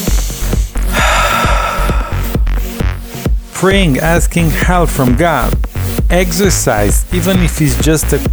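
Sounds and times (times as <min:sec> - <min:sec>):
deep breathing exercise to relieve stress and anxiety: 0:00.0 - 0:03.2
steady rhythmic low thumping: 0:00.0 - 0:08.3
speech: 0:03.6 - 0:08.3.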